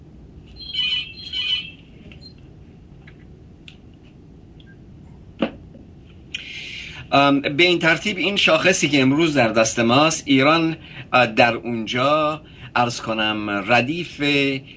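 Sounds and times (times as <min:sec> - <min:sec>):
faint room noise: 0:00.0 - 0:14.7
telephone ringing: 0:00.6 - 0:02.3
speech: 0:07.1 - 0:14.7.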